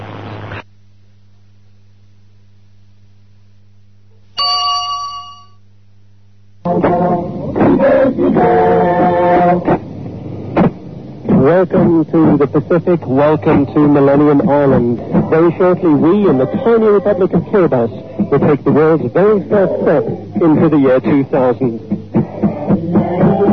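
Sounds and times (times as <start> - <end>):
steady low hum: 0.0 - 23.5
clock bell chiming midnight: 4.4 - 5.6
speech: 11.6 - 22.0.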